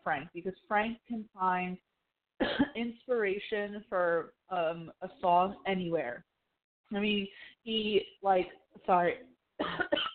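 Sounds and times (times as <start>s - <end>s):
speech: 0.0s - 6.3s, 6.9s - 10.1s
person coughing with something caught in the throat: 2.4s - 2.8s, 9.6s - 10.1s.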